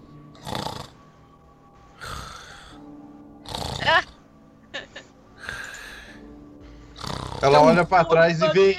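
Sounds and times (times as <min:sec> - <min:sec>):
voice imitating people snoring inside a room: 0:00.4 - 0:01.0, 0:02.0 - 0:02.8, 0:03.4 - 0:04.2, 0:07.0 - 0:07.8
speech: 0:07.4 - 0:08.7.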